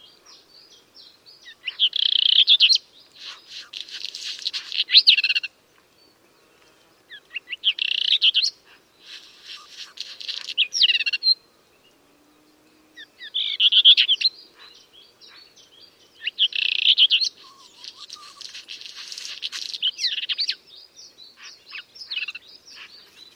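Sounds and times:
black redstart singing scratchy phrases: 0:00.0 - 0:05.5, 0:07.1 - 0:11.4, 0:13.2 - 0:23.3.

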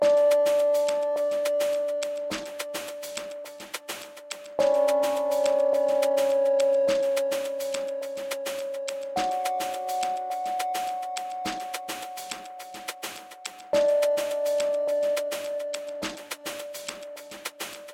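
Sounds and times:
percussion loops with tops: 0:00.0 - 0:17.9
chill synth passage: 0:04.6 - 0:11.1.

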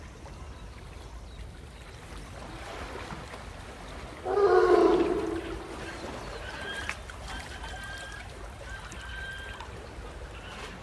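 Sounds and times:
sea lion giving a loud low rasping bellow: 0:04.2 - 0:06.2
faint high call: 0:04.3 - 0:06.1.

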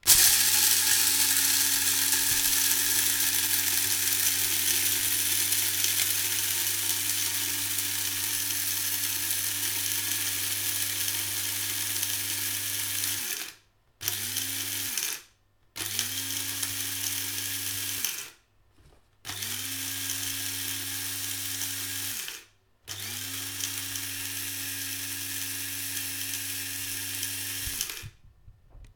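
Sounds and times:
small coffee grinder: 0:00.0 - 0:18.4, 0:19.3 - 0:28.2.

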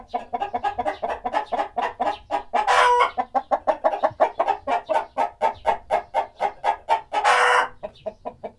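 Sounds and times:
birds: 0:00.0 - 0:08.5
chickens clucking: 0:00.0 - 0:08.5
chicken harsh squawks: 0:02.6 - 0:03.2, 0:06.5 - 0:07.8.

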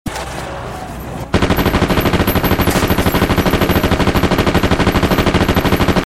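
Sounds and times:
full auto rifle firing: 0:01.3 - 0:06.0.

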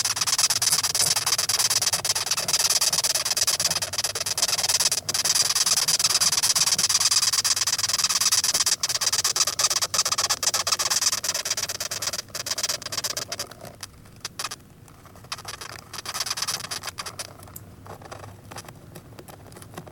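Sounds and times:
velvet ant crawling inside a cardboard box: 0:00.0 - 0:19.9.

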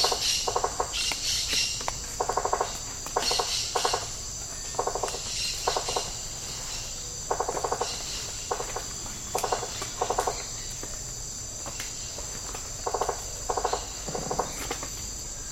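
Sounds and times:
insect shrill drone in tropical rainforest: 0:00.0 - 0:15.4.

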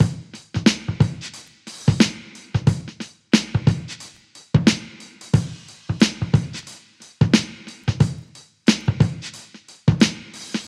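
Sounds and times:
90 bpm breakbeat drum beat in E with kick tuned to E: 0:00.0 - 0:10.6.

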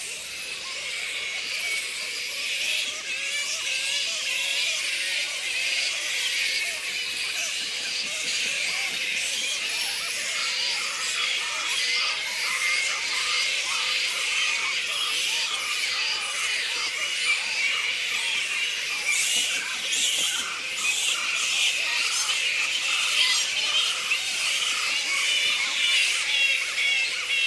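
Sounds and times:
colony of black fruit bats squeaking: 0:00.5 - 0:27.4.

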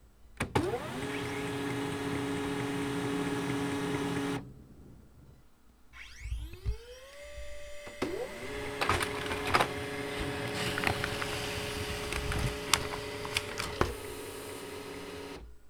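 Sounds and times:
small office printer taking paper from ADF: 0:00.4 - 0:04.5, 0:06.6 - 0:15.5.

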